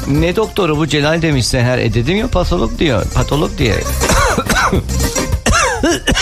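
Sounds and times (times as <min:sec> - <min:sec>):
speech: 0:00.1 - 0:05.1
harsh coughing: 0:04.0 - 0:06.1.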